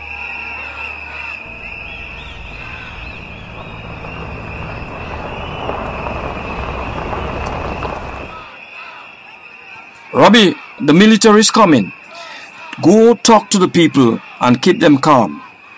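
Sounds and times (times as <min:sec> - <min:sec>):
heavy trucks rumbling: 0:01.4 - 0:08.5
faint high hum: 0:01.5 - 0:08.4
speech: 0:10.2 - 0:12.0, 0:12.8 - 0:15.4.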